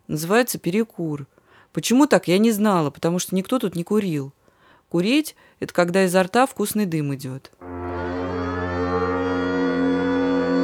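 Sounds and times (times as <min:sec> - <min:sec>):
speech: 0:00.1 - 0:07.8
factory whistle blast signalling end of work: 0:07.6 - 0:10.6.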